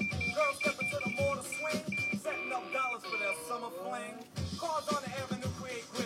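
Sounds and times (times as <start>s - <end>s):
car horn beeping: 0.0s - 3.6s
indistinct voices: 0.0s - 5.9s.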